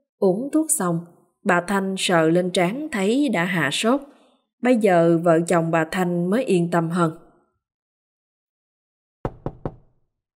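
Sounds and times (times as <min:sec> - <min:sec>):
speech: 0:00.2 - 0:07.2
knocking on a door in the middle of the night: 0:09.2 - 0:10.0.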